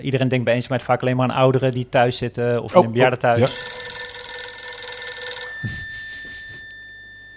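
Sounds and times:
speech: 0.0 - 3.9
telephone bell ringing: 3.4 - 7.3.

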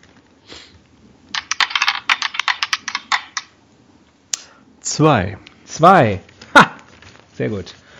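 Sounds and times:
dice clattering across a hard tabletop: 1.4 - 3.5
speech: 5.0 - 6.3, 7.4 - 7.8.

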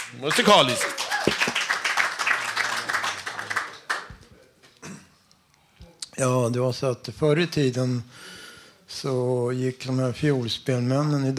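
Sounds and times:
audience applause: 0.0 - 4.1
speech: 0.1 - 1.5, 6.2 - 8.2, 9.0 - 11.3.

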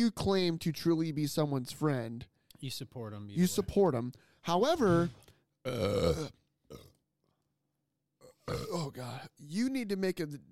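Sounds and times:
speech: 0.0 - 6.9, 8.5 - 10.5
person burping: 5.6 - 7.0, 8.2 - 9.0
grunting sounds: 8.2 - 9.2.

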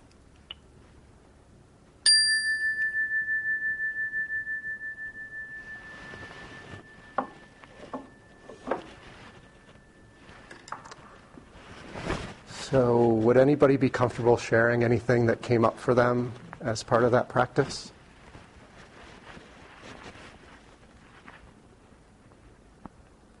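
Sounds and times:
faint noise: 0.0 - 23.3
meditation bell ringing: 2.0 - 11.8
speech: 12.7 - 18.0.

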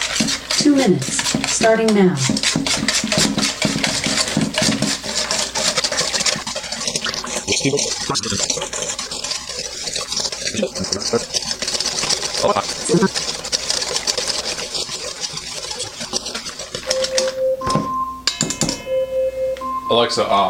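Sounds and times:
pudding mix being whisked in a bowl: 0.0 - 17.4
speech: 0.6 - 3.4, 7.6 - 8.8, 10.5 - 11.5, 12.4 - 13.4, 19.9 - 20.4
short electronic tones: 16.8 - 20.4.

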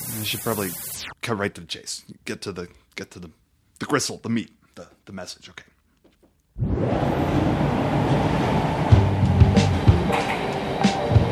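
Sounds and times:
speech: 0.2 - 5.7
subway train rushing through a station: 6.8 - 11.3.

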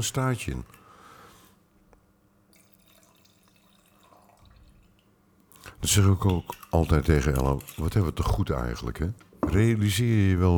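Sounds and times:
speech: 0.0 - 0.8, 5.8 - 10.5
wine pouring into a glass: 2.5 - 8.4
wine dripping: 2.5 - 9.4.

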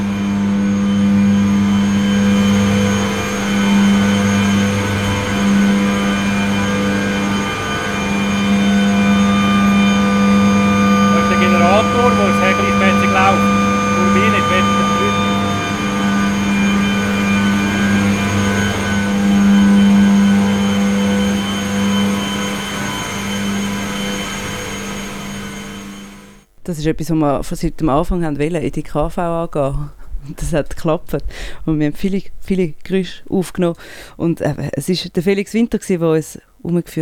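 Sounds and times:
turbine mechanical drone: 0.0 - 26.5
power generator with a yellow housing running: 0.0 - 26.6
speech: 26.8 - 37.0.

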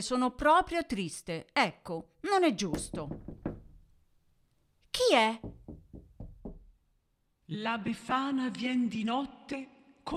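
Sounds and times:
speech: 0.0 - 3.4, 5.1 - 5.6, 7.5 - 10.1
firm knocks on a wooden door: 2.7 - 4.0, 5.4 - 6.9.

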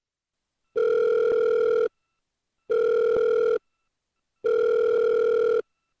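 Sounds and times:
telephone ringback tone while a call connects: 0.8 - 1.9, 2.7 - 3.6, 4.4 - 5.6.

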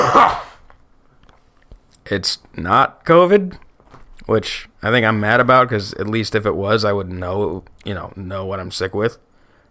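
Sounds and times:
person coughing: 0.0 - 0.6
rough throat-clearing rasp: 0.0 - 0.6
speech: 2.1 - 3.6, 4.3 - 9.3.

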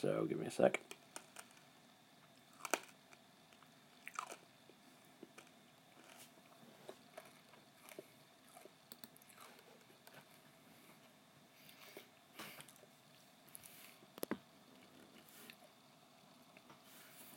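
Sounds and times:
speech: 0.0 - 1.0
chewing and biting food: 2.5 - 3.0, 3.6 - 4.5, 5.2 - 10.2.

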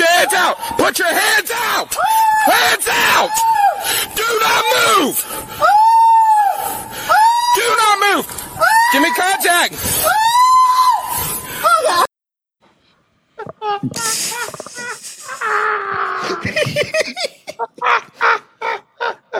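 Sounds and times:
man screaming after being tased: 0.0 - 12.1, 15.4 - 16.5
laughter: 13.4 - 19.3.

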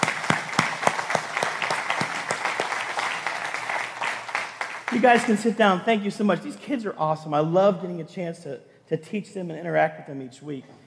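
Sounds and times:
crowd applauding for children: 0.0 - 5.5
speech: 4.9 - 10.8.

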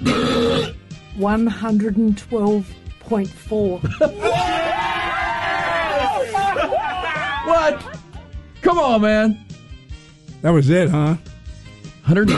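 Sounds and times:
man letting out a long loud rumbling belch: 0.0 - 0.8, 12.2 - 12.3
speech: 1.2 - 4.7, 7.5 - 8.0, 8.6 - 9.5, 10.4 - 11.3, 12.0 - 12.3
laughter: 3.9 - 8.2.

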